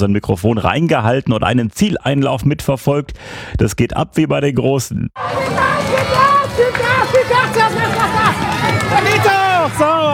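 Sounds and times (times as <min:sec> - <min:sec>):
speech: 0:00.0 - 0:09.9
high-pitched children's voices: 0:05.2 - 0:08.8
spectators cheering at children's balance-bike race finish on market square: 0:05.2 - 0:10.1.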